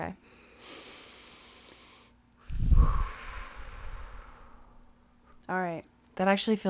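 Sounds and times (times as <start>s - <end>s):
speech: 0.0s - 0.4s, 5.5s - 6.6s
deep breath in and out: 0.3s - 5.0s.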